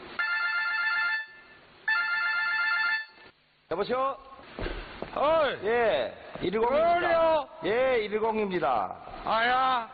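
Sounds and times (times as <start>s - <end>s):
telephone ringing for incoming call: 0.2s - 3.3s
speech: 3.7s - 9.9s.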